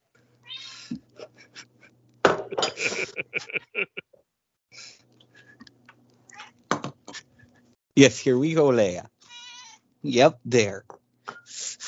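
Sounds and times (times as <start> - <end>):
cat meowing insistently for food: 0.4 - 0.9, 9.3 - 9.8
laughter: 1.0 - 1.9, 2.5 - 4.0
speech: 8.0 - 9.1, 10.0 - 11.0.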